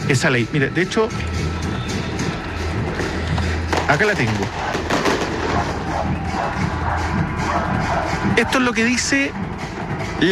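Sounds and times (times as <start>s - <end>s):
speech: 0.1s - 1.6s, 3.9s - 4.7s, 5.6s - 9.5s
dense continuous barrage of fireworks crackling and booming: 2.0s - 6.7s.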